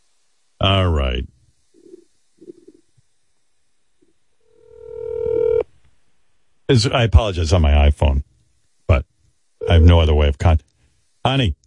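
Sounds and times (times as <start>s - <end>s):
speech: 0.6s - 1.4s, 6.7s - 8.3s, 9.7s - 11.6s
phone dialing tones: 4.6s - 5.6s, 9.6s - 10.0s.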